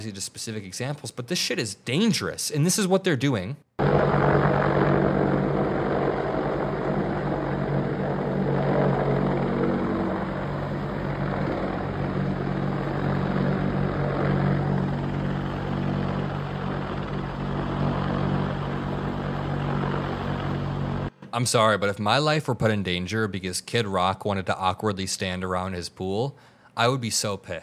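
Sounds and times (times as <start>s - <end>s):
speech: 0.0s - 4.1s, 21.4s - 27.6s
helicopter flying over a pool: 3.8s - 21.2s.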